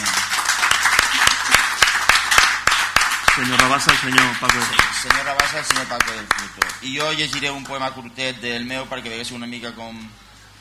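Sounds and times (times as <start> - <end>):
room full of people applauding: 0.0 - 7.7
sharp loud claps: 0.0 - 7.8
speech: 3.4 - 10.2.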